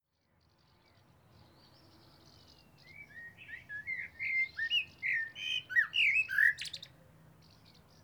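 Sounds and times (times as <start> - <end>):
Common blackbird Turdus merula singing: 1.6 - 6.9.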